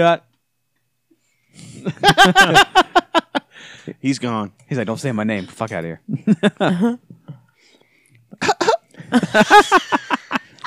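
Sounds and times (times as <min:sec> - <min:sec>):
speech: 0:00.0 - 0:00.3, 0:01.5 - 0:03.0, 0:03.6 - 0:07.2, 0:09.1 - 0:10.1
laughter: 0:01.8 - 0:03.5, 0:08.4 - 0:10.6
person coughing: 0:08.4 - 0:08.8.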